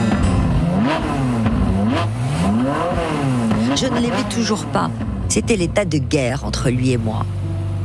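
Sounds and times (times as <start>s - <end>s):
sports car engine revving as it speeds through Paris: 0.0s - 5.8s
speech: 3.8s - 7.4s.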